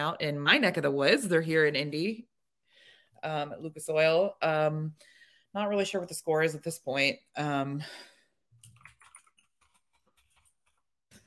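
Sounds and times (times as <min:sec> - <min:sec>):
speech: 0:00.0 - 0:02.3, 0:03.2 - 0:08.1
typing on a computer keyboard: 0:08.6 - 0:10.8.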